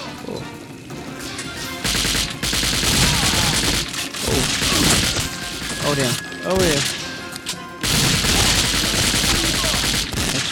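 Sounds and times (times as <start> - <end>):
rapid automatic gunfire from a shooter video game: 1.8 - 7.0, 7.8 - 10.5
speech: 5.9 - 7.0.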